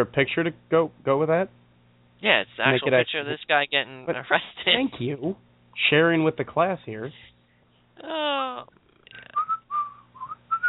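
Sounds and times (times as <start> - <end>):
speech: 0.0 - 1.6, 2.2 - 7.3, 8.0 - 8.8
person idly whistling while waiting: 9.2 - 10.6.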